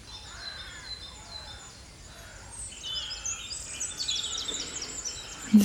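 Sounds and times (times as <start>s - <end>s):
crows calling at dawn: 0.2s - 5.5s
herons calling at dawn: 2.2s - 5.6s.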